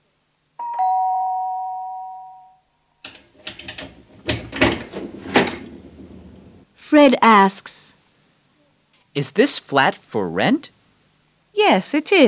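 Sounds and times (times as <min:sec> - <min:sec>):
two-tone doorbell chime of a flat: 0:00.6 - 0:02.7
door rattling and clattering open: 0:03.1 - 0:06.6
speech: 0:06.9 - 0:07.8, 0:09.2 - 0:10.8, 0:11.6 - 0:12.2.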